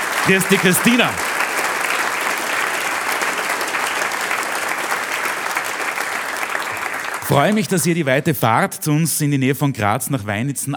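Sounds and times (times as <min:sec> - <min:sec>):
audience applause: 0:00.0 - 0:08.2
speech: 0:00.2 - 0:01.3, 0:07.3 - 0:10.7.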